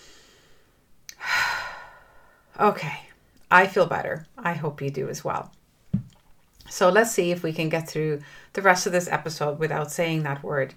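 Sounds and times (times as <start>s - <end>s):
deep breath in and out: 0.0s - 2.6s
speech: 2.6s - 5.6s, 6.7s - 10.7s.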